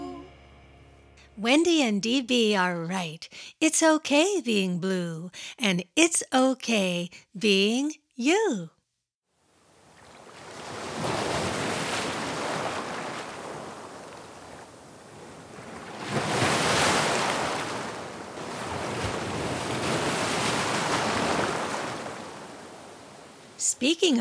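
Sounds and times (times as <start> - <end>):
speech: 1.4 - 8.8, 23.7 - 24.2
ocean waves: 9.4 - 23.6
surf crashing: 10.2 - 23.5.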